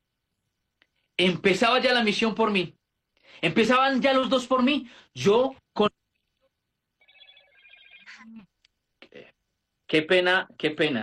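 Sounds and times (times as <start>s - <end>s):
speech: 1.2s - 6.0s, 9.9s - 11.0s
telephone ringing with a warbling electronic tone: 7.0s - 8.4s.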